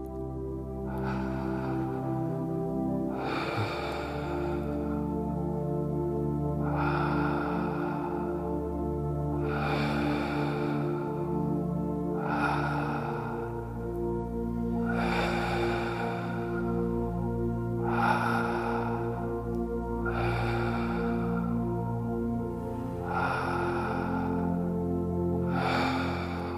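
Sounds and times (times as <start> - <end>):
quiet music: 0.0 - 26.5
slow breathing in and out through the mouth during a guided meditation: 0.0 - 26.5.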